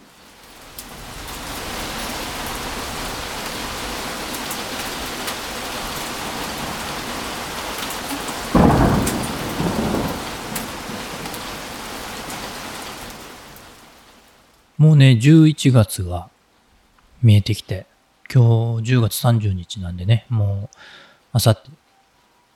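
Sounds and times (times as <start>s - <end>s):
thunder rumbling: 1.0s - 13.2s
hail pouring down through an opened window: 4.3s - 12.5s
speech: 14.8s - 16.3s, 17.2s - 21.8s.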